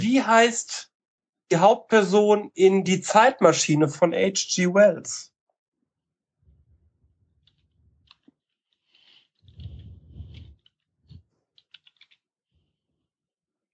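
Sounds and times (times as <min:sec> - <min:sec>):
speech: 0:00.1 - 0:00.9, 0:01.5 - 0:05.3
typing on a keyboard: 0:11.6 - 0:12.2.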